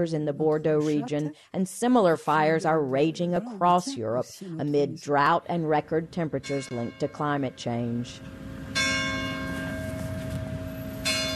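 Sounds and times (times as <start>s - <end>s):
speech: 0.0s - 8.5s
church bells ringing: 6.2s - 11.3s.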